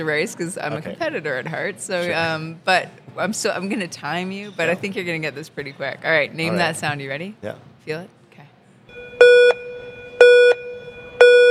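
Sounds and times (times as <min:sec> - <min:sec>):
speech: 0:00.0 - 0:08.2
ski race start gate countdown beeps: 0:08.9 - 0:11.4.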